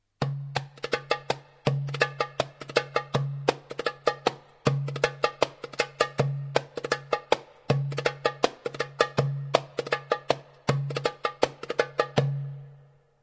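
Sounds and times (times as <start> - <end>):
darbuka drumming: 0.2 - 12.9.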